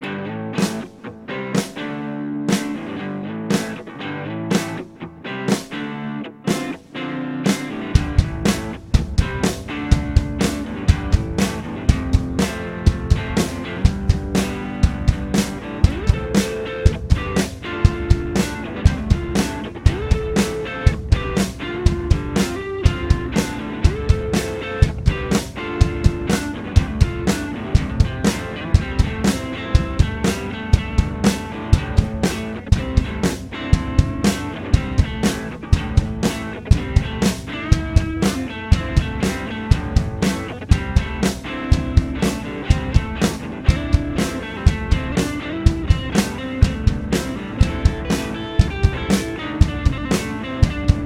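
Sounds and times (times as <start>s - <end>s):
fast backing track with drums: 0.6s - 51.0s.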